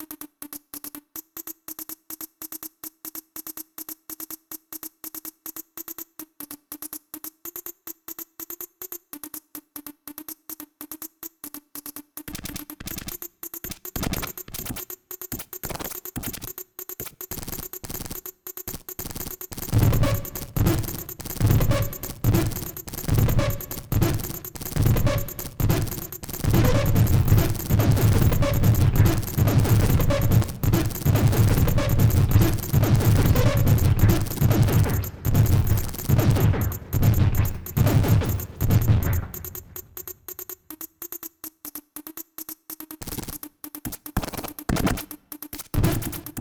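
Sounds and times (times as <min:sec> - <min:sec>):
glitch kit sounds: 0:19.6 - 0:40.2, 0:45.7 - 0:46.4.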